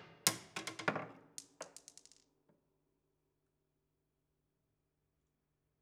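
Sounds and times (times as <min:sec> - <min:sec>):
marble lazy bounce: 0:00.4 - 0:02.3.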